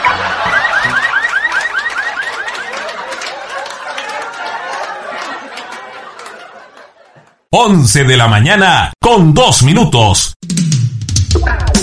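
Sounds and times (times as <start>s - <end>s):
car alarm whooping in a rising siren pattern: 0.0s - 3.2s
laughter: 0.0s - 7.5s
speech: 7.5s - 10.7s.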